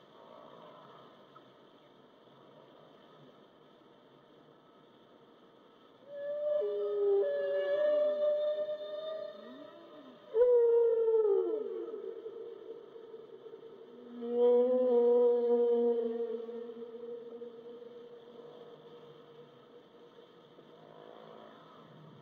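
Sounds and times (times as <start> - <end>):
whale: 6.0 - 20.0, 20.7 - 22.2.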